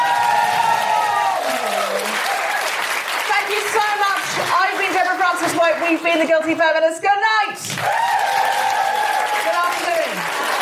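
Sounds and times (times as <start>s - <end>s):
cheers and whoops: 0.0s - 2.8s, 7.6s - 10.6s
large crowd clapping: 0.0s - 6.6s, 7.6s - 10.6s
speech: 5.9s - 8.2s.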